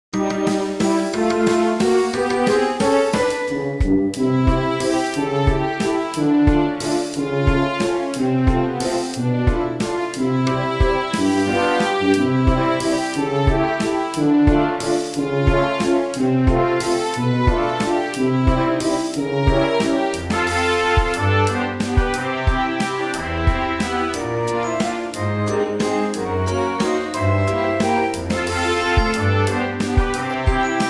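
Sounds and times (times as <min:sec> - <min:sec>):
toy waltz music loop: 0:00.2 - 0:30.8.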